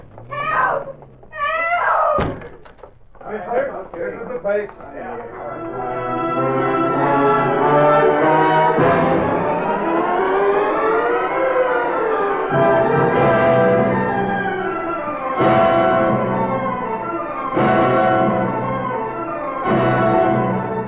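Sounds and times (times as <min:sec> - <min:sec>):
police siren wailing: 0:00.0 - 0:02.2, 0:05.8 - 0:20.8
thud: 0:02.0 - 0:03.0.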